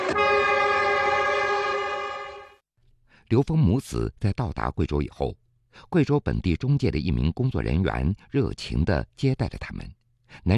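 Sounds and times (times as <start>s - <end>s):
horn blast of a passenger train to Guizhou China: 0.0s - 2.6s
speech: 3.3s - 10.5s.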